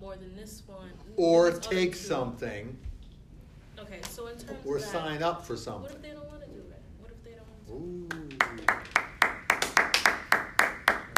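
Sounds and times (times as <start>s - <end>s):
speech: 0.0s - 2.9s, 3.8s - 6.6s
one person clapping: 8.0s - 11.1s.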